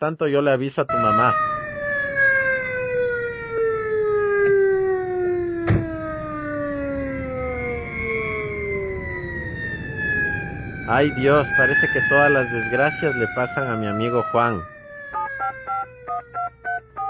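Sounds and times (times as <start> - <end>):
speech: 0.0 - 1.6, 10.9 - 14.8
ambulance siren wailing: 0.9 - 17.0
sharp knock: 5.6 - 5.9.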